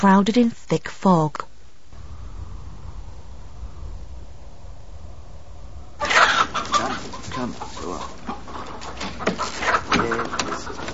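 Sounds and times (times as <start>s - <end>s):
speech: 0.0s - 1.5s
low steady noise: 0.0s - 10.9s
chicken clucking in a coop aboard a sailing ship at sea: 6.0s - 10.9s.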